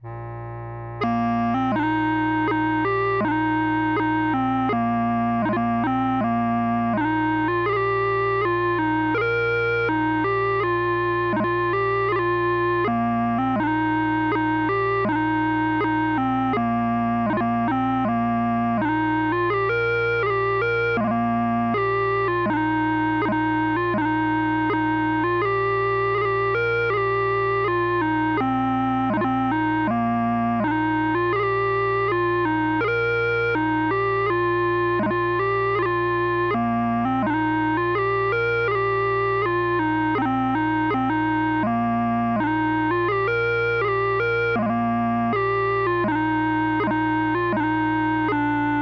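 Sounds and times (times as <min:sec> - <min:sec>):
bagpipes playing at 84 bpm: 0:01.0 - 0:48.7.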